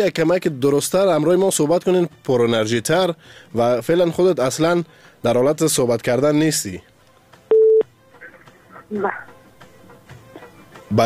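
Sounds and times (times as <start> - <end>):
speech: 0.0 - 6.9, 8.9 - 9.3
telephone line tone after a phone call drops: 7.5 - 7.8
faint voices: 8.2 - 9.4.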